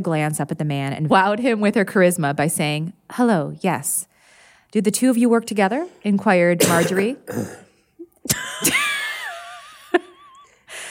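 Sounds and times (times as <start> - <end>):
speech: 0.0 - 4.1, 4.7 - 7.6, 8.2 - 8.8
person coughing into the microphone: 6.6 - 8.7.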